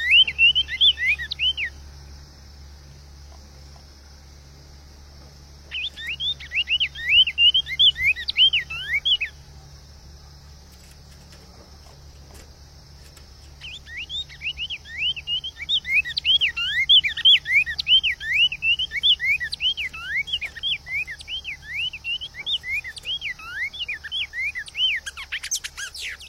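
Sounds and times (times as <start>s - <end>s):
Cinnamon Tanager singing fast swooping whistled notes: 0.0s - 1.9s, 5.6s - 9.6s, 13.4s - 26.2s.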